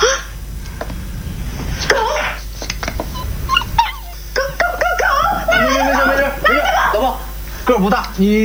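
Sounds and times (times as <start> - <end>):
steady hum: 0.0 - 8.4
laughter: 2.8 - 7.4
small stray dog whimpering in a home: 3.1 - 4.6
speech: 7.7 - 8.4.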